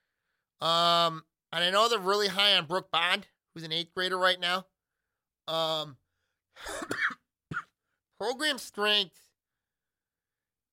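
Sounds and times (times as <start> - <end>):
speech: 0.6 - 4.7, 5.5 - 6.0, 6.6 - 7.2, 8.2 - 9.2
man coughing: 6.6 - 7.8.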